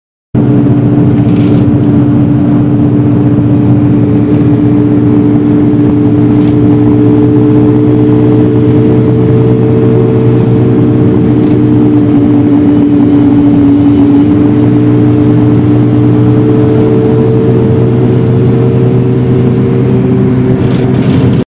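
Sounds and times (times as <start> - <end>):
minibus: 0.4 - 21.4.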